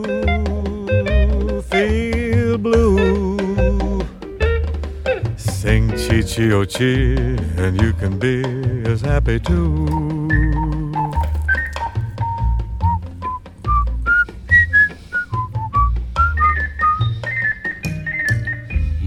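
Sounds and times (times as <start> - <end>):
cheerful melody whistled clearly: 0.0 - 5.2, 9.6 - 19.0
steady musical backing: 0.0 - 19.0
speech: 6.2 - 10.2.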